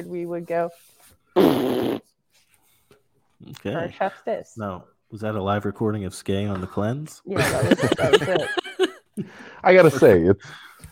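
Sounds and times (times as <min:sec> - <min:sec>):
speech: 0:00.0 - 0:02.2, 0:03.4 - 0:10.8
loud buzzy fart sound effect: 0:01.4 - 0:02.1
laughter: 0:07.4 - 0:09.4.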